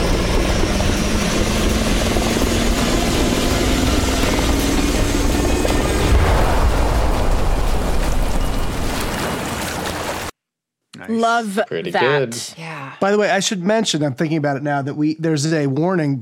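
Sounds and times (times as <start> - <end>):
helicopter roar with whining engine tone: 0.0 - 10.3
deep rumbling blast of helicopter exploding: 5.9 - 10.3
speech: 11.1 - 16.2.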